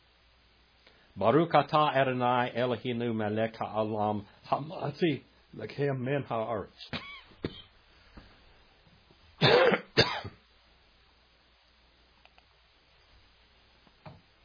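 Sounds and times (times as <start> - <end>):
speech: 1.2 - 7.6
person coughing: 6.9 - 7.7, 9.4 - 10.4
faint clicks: 12.2 - 12.5.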